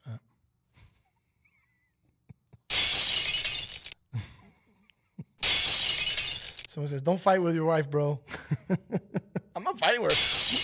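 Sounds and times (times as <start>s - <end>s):
falling glass shards tinkling: 2.7s - 4.0s, 5.4s - 6.7s, 10.1s - 10.6s
glass shattering: 2.7s - 4.0s, 5.4s - 6.7s, 10.0s - 10.6s
speech: 6.8s - 9.2s, 9.8s - 10.6s
laughter: 8.3s - 9.6s.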